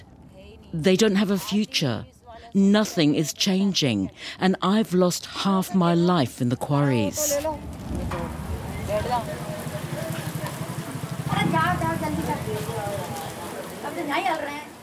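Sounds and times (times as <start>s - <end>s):
speech: 0.7s - 8.1s, 9.0s - 9.5s, 13.9s - 14.7s
heavy downpour on an asphalt street in Bundi: 7.2s - 14.8s.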